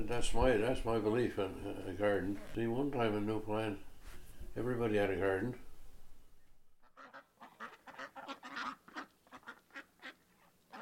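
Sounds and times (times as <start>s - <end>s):
speech: 0.0s - 3.9s, 4.6s - 5.6s
flock of geese honking: 6.8s - 10.7s.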